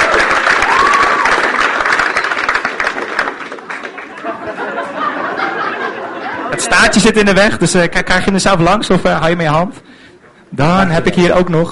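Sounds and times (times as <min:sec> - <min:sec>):
audience applauding a quiz winner: 0:00.0 - 0:05.4
laughter: 0:03.8 - 0:06.9
speech: 0:06.6 - 0:09.8, 0:10.5 - 0:11.6.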